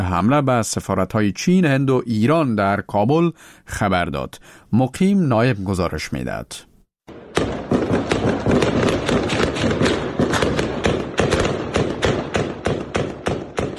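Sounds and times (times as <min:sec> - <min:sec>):
speech: 0:00.0 - 0:06.7
gunfire volleys in a city neighbourhood in Kabul: 0:07.1 - 0:13.7.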